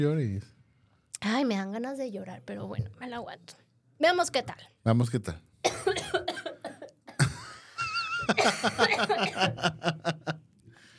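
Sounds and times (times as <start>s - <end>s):
speech: 0.0s - 0.6s, 1.2s - 6.3s, 8.3s - 10.4s
person coughing with harsh hacks: 5.7s - 7.4s, 8.3s - 9.5s
laughter: 7.2s - 10.4s.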